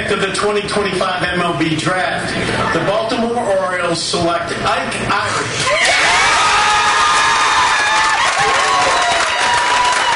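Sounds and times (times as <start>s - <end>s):
speech: 0.1s - 6.3s
family and friends cheering at a player's home: 5.6s - 10.1s
excited shouts and whoops: 5.7s - 10.1s
family and friends clapping at a player's home: 6.0s - 10.1s.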